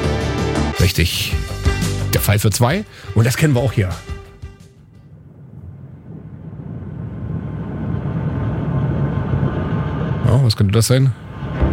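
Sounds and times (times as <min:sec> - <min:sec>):
speech: 0:00.8 - 0:01.6, 0:02.2 - 0:04.1, 0:10.7 - 0:11.2
submarine war film theme music dark rumbling low drone: 0:05.0 - 0:11.7.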